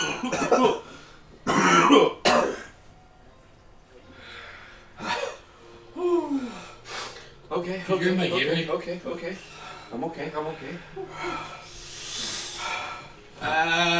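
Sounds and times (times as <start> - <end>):
person coughing hard after eating very hot sauce: 0.0 - 0.8, 1.5 - 2.8, 5.0 - 5.4
speech: 0.2 - 2.2, 7.7 - 11.6, 13.4 - 13.9.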